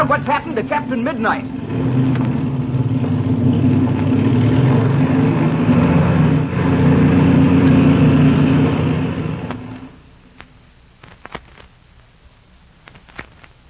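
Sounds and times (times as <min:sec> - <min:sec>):
speech: 0:00.0 - 0:02.0
airplane engine droning while warming up and taxiing: 0:00.0 - 0:10.3
faint clicks and taps: 0:09.4 - 0:11.8, 0:12.8 - 0:13.6.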